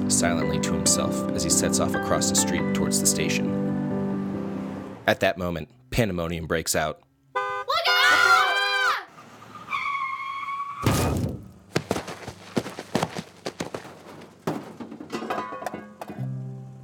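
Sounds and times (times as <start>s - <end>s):
speech: 0.1s - 3.9s, 5.1s - 7.1s
car tires squealing in a skid: 7.4s - 15.0s
scattered knocks and clattering bumps: 10.8s - 16.3s
heavy thudding impact of a car hitting a pedestrian: 10.9s - 15.1s.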